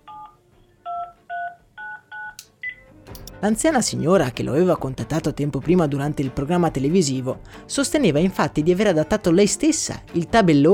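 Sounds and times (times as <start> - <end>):
DTMF keypad tones of a telephone number being dialed: 0.1 - 2.8
speech: 3.4 - 10.7.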